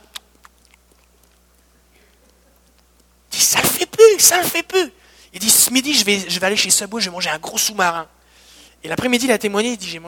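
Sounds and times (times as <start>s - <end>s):
voice imitating a man chewing gum with wet mouth clicks and smacks: 0.1s - 3.1s
speech: 4.2s - 8.2s, 8.8s - 10.0s.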